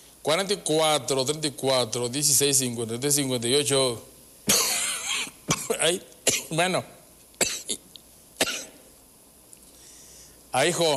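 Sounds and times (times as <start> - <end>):
speech: 0.2 - 4.1, 5.7 - 7.0, 10.6 - 10.9
person coughing: 4.5 - 6.6, 7.4 - 7.8, 8.4 - 8.8.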